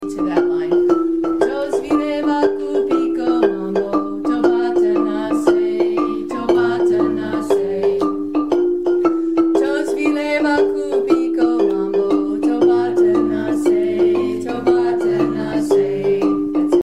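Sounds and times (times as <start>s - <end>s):
marimba playing a harmony line: 0.0s - 16.8s.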